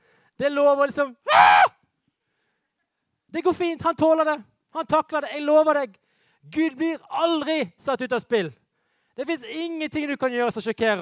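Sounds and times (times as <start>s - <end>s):
speech: 0.4s - 1.7s, 3.3s - 8.6s, 9.2s - 10.9s
person screaming: 1.2s - 1.8s.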